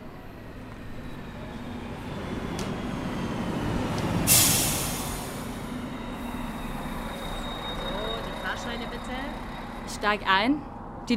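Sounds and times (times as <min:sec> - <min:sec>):
arriving train rumbling: 0:00.0 - 0:11.1
sharp hiss of train air brakes: 0:04.3 - 0:05.5
speech: 0:10.0 - 0:11.1.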